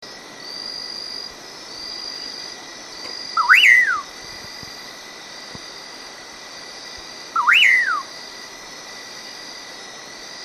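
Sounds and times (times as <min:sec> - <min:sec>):
common pauraque song: 0:03.4 - 0:04.1, 0:07.4 - 0:08.1.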